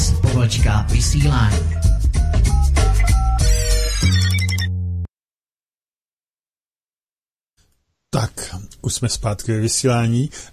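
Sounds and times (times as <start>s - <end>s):
speech: 0.5s - 1.9s, 8.1s - 10.5s
Skype incoming-call ringtone: 2.5s - 4.8s.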